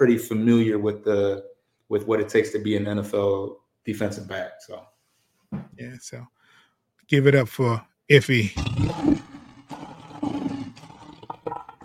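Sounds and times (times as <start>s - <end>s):
speech: 0.0s - 4.9s, 5.5s - 6.4s, 7.1s - 9.1s
lion roaring: 8.6s - 11.8s.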